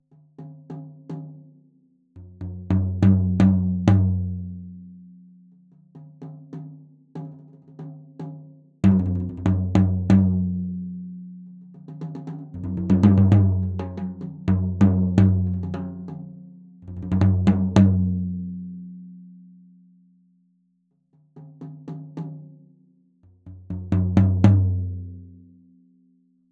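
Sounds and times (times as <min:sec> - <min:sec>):
jazz drum kit floor tom in a microphone test: 0:02.4 - 0:04.6, 0:08.8 - 0:10.8, 0:11.8 - 0:16.3, 0:16.9 - 0:18.6, 0:23.4 - 0:25.2.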